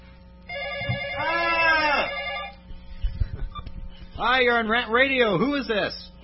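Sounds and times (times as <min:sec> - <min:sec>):
telephone ringing with bright buzzing electronic tone: 0:00.5 - 0:02.6
speech: 0:04.2 - 0:06.2.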